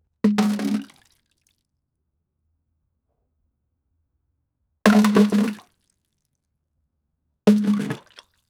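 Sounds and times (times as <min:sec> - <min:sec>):
bucket being thrown: 0:00.3 - 0:00.9, 0:04.9 - 0:05.6, 0:07.5 - 0:08.2.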